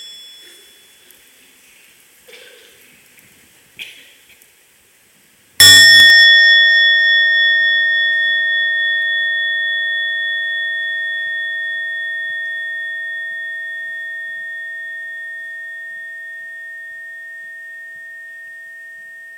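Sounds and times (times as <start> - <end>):
meditation bell struck firmly by the bell master: 0.0 - 1.4, 5.6 - 19.3.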